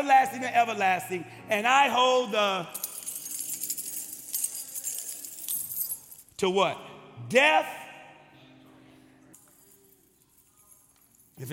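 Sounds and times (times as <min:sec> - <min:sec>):
speech: 0:00.0 - 0:02.8, 0:06.4 - 0:07.8, 0:11.4 - 0:11.5
bunch of keys jangling: 0:02.6 - 0:06.4, 0:09.4 - 0:11.5.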